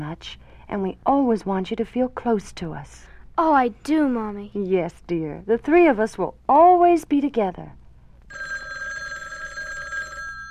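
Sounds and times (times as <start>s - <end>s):
speech: 0.1s - 8.5s
telephone bell ringing with an electric trill: 8.3s - 10.4s.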